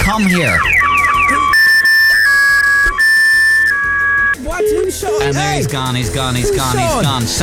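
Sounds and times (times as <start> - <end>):
electronic alarm blaring: 0.0 - 4.4
speech: 0.1 - 0.7, 4.4 - 7.4.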